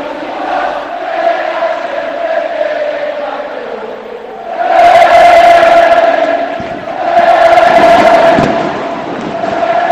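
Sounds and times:
stadium crowd singing an anthem a cappella: 0.0s - 9.9s
crackling fireworks: 7.7s - 9.9s.

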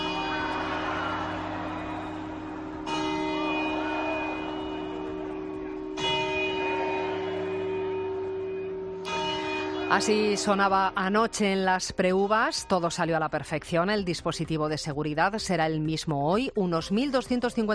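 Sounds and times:
murmuring crowd in an open square: 0.0s - 7.9s
large clock tower bell striking midnight: 0.0s - 13.2s
speech: 9.9s - 17.7s.

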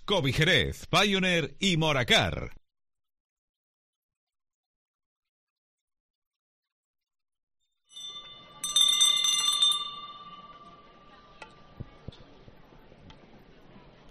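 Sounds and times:
speech: 0.1s - 2.6s
handbell rung at head of procession: 7.9s - 11.2s
murmuring outdoor crowd: 8.3s - 14.1s.

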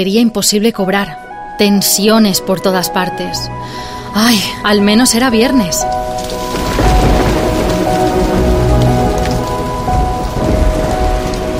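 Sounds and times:
speech: 0.0s - 6.2s
low rumbles: 3.4s - 11.5s
steady rain pouring outside: 5.3s - 11.5s.

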